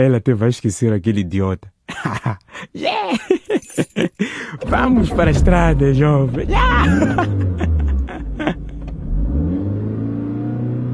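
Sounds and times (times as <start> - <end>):
speech: 0.0 - 7.7
laughter: 1.9 - 4.2, 6.6 - 8.8
car engine revving: 4.6 - 10.9.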